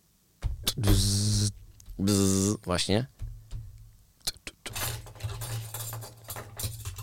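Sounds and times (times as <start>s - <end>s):
speech: 0.8s - 1.2s, 2.0s - 3.2s
keys jangling: 4.7s - 7.0s.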